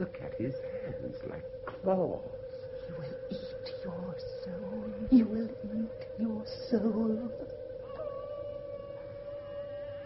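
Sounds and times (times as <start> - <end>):
speech: 0.0 - 5.6
wolf howling: 6.7 - 10.0.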